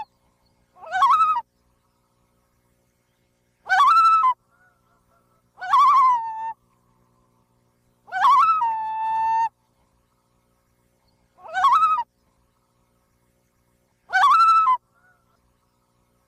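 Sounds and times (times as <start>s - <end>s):
loon shorter quavering cries: 0.8s - 1.5s, 3.6s - 6.6s, 8.0s - 9.5s, 11.4s - 12.1s, 14.1s - 15.4s.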